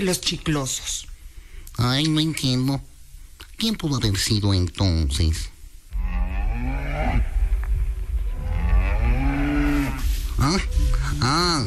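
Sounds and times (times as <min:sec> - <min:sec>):
speech: 0:00.0 - 0:01.1, 0:01.8 - 0:02.9, 0:03.6 - 0:05.5, 0:10.4 - 0:11.6
cow mooing: 0:05.9 - 0:07.4, 0:08.3 - 0:10.1.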